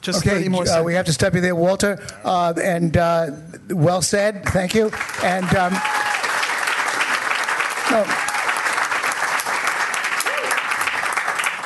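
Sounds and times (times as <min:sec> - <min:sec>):
speech: 0:00.0 - 0:06.1, 0:07.9 - 0:08.3
audience applauding: 0:04.8 - 0:11.6.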